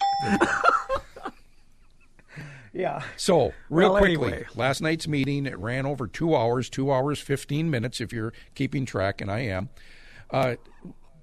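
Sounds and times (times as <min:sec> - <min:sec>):
correct answer bell ding-dong chime: 0:00.0 - 0:00.7
speech: 0:00.2 - 0:00.7, 0:02.8 - 0:11.2.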